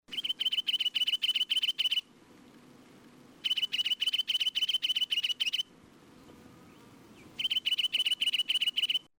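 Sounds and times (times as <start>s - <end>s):
bridled titmouse: 0.1s - 2.0s, 3.4s - 5.6s, 7.4s - 9.1s.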